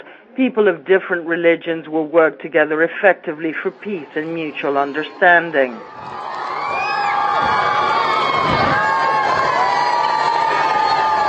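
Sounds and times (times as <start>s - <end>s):
speech: 0.4s - 6.2s
huge crowd of school children cheering: 4.2s - 11.2s.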